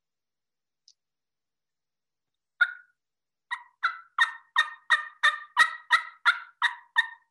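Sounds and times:
diaphragm mouth call imitating turkey yelps: 0:02.6 - 0:02.9, 0:03.5 - 0:07.3.

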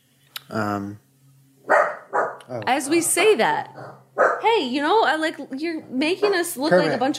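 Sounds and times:
speech: 0:00.5 - 0:01.0, 0:02.5 - 0:07.1
dog barking: 0:01.7 - 0:02.4, 0:03.7 - 0:04.4.

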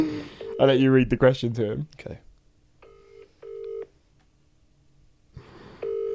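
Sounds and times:
speech: 0:00.0 - 0:02.2
electronic phone ring tone of an outgoing phone call: 0:02.8 - 0:03.9, 0:05.8 - 0:06.1.

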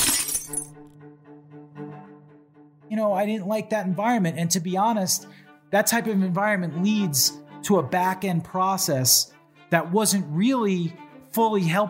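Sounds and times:
glass pieces ringing as they settle: 0:00.0 - 0:00.7
thrown glass ashtray shattering: 0:00.0 - 0:00.8
speech: 0:02.9 - 0:11.8.

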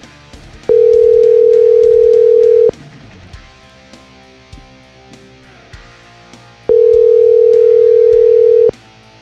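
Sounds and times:
phone ringback tone of an unanswered call: 0:00.7 - 0:02.7, 0:06.7 - 0:08.7.

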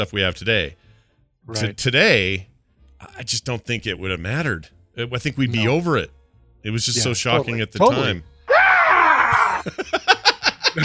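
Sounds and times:
speech: 0:00.0 - 0:00.8, 0:01.4 - 0:08.3, 0:09.6 - 0:10.1
man yelling at a rally: 0:07.0 - 0:09.6
laughter: 0:09.3 - 0:10.8.

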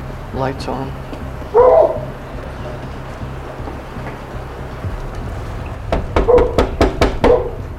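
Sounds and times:
steady low rumble: 0:00.0 - 0:07.7
speech: 0:00.4 - 0:01.9
dog barking: 0:01.6 - 0:02.1, 0:07.2 - 0:07.6
sharp knock-like hits: 0:05.8 - 0:07.6.

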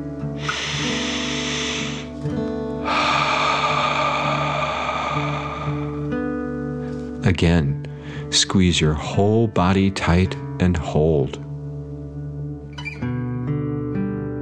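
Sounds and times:
gentle sustained music bed: 0:00.0 - 0:14.4
slow breathing in through the nose and out through the mouth: 0:00.3 - 0:07.2, 0:07.9 - 0:08.3
speech: 0:07.4 - 0:11.4.

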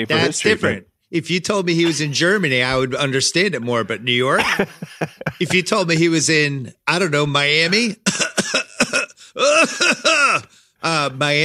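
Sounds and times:
speech: 0:00.0 - 0:08.6, 0:09.4 - 0:11.4
laughter: 0:04.3 - 0:06.0
person coughing deliberately: 0:08.0 - 0:10.6.

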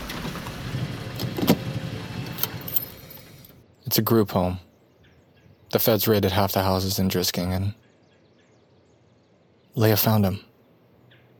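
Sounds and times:
car engine idling and rolling to a stop: 0:00.0 - 0:03.6
light clicks and jingles: 0:02.6 - 0:03.6
speech: 0:03.9 - 0:04.7, 0:05.7 - 0:07.8, 0:09.8 - 0:10.5.

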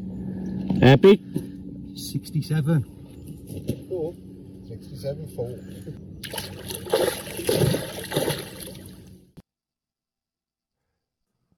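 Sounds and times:
speech: 0:00.8 - 0:01.4, 0:02.0 - 0:08.7
large goldfish splashing back into water: 0:06.2 - 0:09.0.

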